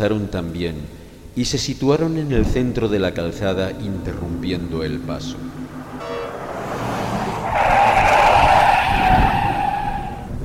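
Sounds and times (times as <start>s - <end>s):
speech: 0.0s - 6.1s
low car engine rumble: 2.4s - 10.2s
car tires skidding and screeching on a rain-soaked street: 4.1s - 10.4s.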